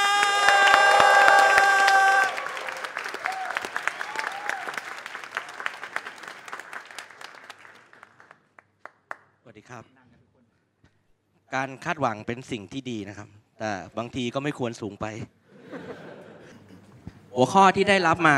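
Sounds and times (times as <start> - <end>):
audience cheering: 0.0 - 7.0
audience applause welcoming comedian: 0.0 - 8.4
speech: 11.6 - 15.4, 17.4 - 18.3
laughter: 15.5 - 18.3.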